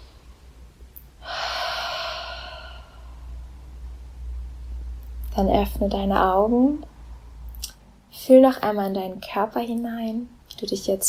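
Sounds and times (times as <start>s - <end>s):
low steady hum: 0.0s - 11.0s
deep breath during a guided relaxation exercise: 1.2s - 3.6s
speech: 5.4s - 6.9s, 8.2s - 11.0s.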